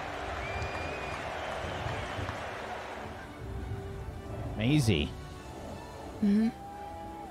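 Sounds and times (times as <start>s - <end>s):
large crowd roaring and cheering: 0.0s - 3.3s, 6.5s - 7.2s
speech: 4.6s - 5.2s, 6.2s - 6.6s.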